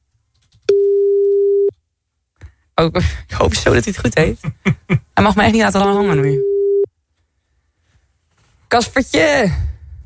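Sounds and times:
telephone ringback tone while a call is being placed: 0.7s - 1.7s, 6.4s - 6.9s
speech: 2.8s - 6.5s, 8.7s - 9.7s.

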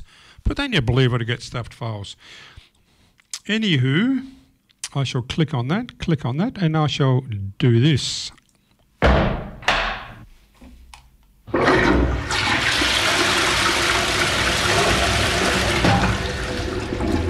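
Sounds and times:
speech: 0.5s - 2.6s, 3.4s - 8.4s
toilet handle clunks: 9.0s - 10.2s
toilet flushing: 11.5s - 17.2s.

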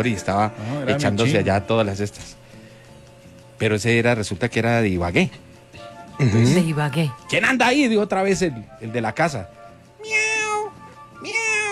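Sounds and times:
speech: 0.0s - 2.4s, 3.6s - 5.5s, 6.2s - 9.6s
cat meowing: 10.0s - 11.6s.

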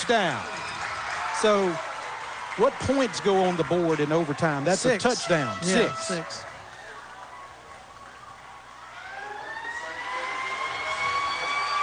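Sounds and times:
dense noisy backdrop at a football game: 0.0s - 11.8s
speech: 0.1s - 0.6s, 1.4s - 1.9s, 2.6s - 6.5s
stadium siren sound effect at a football game: 9.0s - 11.8s.

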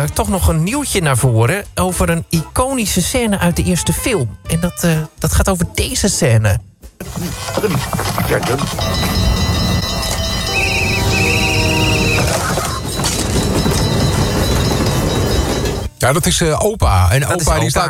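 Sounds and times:
speech: 0.0s - 9.4s, 16.0s - 17.8s
approaching train rumbling: 7.0s - 16.0s
high metallic squeal from train wheels: 8.3s - 15.9s.

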